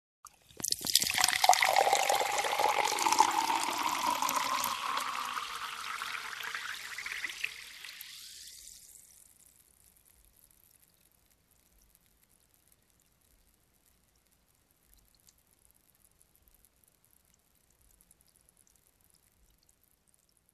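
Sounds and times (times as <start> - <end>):
water pouring into a glass: 0.2 - 9.1.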